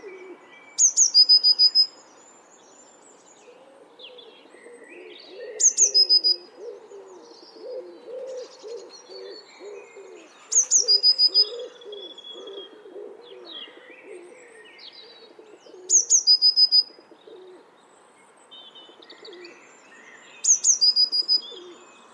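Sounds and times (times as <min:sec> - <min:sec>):
dove cooing: 0:00.0 - 0:00.5, 0:03.5 - 0:17.7, 0:19.2 - 0:19.7, 0:21.2 - 0:21.9
Eurasian blue tit sharp high calls: 0:00.8 - 0:01.9, 0:10.4 - 0:11.7, 0:16.0 - 0:16.9, 0:20.4 - 0:21.8.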